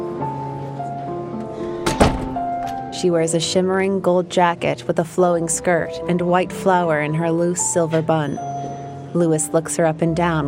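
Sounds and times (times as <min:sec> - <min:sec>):
room door shut by someone stepping onto a second-floor balcony: 0:01.8 - 0:02.8
speech: 0:03.0 - 0:08.6, 0:09.2 - 0:10.4.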